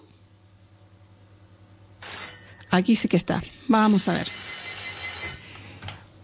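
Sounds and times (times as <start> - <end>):
telephone ringing with electronic trill for incoming call: 2.0 - 3.1, 3.7 - 5.8
speech: 2.7 - 4.4.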